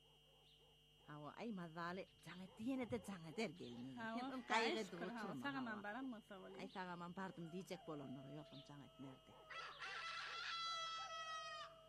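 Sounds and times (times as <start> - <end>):
speech: 1.1 - 9.9
faint rooster crowing: 7.3 - 11.8.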